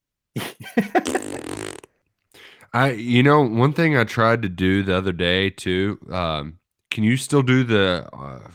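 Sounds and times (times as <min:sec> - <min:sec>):
speech: 0:00.4 - 0:01.2, 0:02.8 - 0:08.5
person blowing a long buzzy raspberry imitating a fart: 0:00.9 - 0:01.9.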